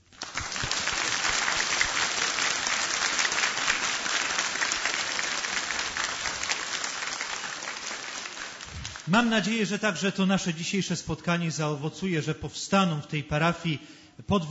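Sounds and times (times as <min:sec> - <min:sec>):
audience applause: 0:00.0 - 0:09.3
speech: 0:09.1 - 0:14.4.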